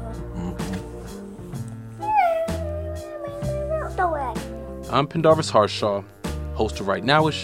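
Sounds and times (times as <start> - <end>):
steady background of low musical tones: 0.0 - 6.1
long drawn-out cat meow: 2.0 - 3.7
speech: 4.9 - 7.4.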